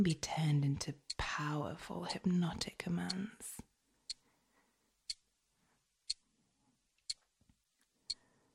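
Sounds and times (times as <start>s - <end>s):
speech: 0.0s - 3.7s
clock ticking: 5.1s - 5.3s, 6.0s - 6.2s, 7.0s - 7.2s.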